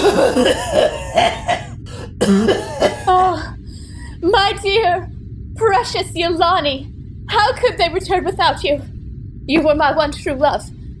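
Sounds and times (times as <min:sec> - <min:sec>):
heavy hacking coughs: 0:00.0 - 0:03.2
speech: 0:00.2 - 0:01.4, 0:02.2 - 0:02.6, 0:04.5 - 0:08.9, 0:09.5 - 0:10.8.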